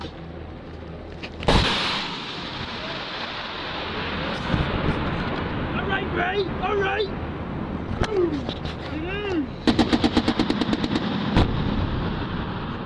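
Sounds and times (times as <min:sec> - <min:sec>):
noisy outdoor background: 0:00.0 - 0:12.8
sharp gunshot during combat in Afghanistan: 0:01.5 - 0:03.0, 0:09.6 - 0:12.8
rapid burst of automatic gunfire during combat in Afghanistan: 0:09.7 - 0:11.5.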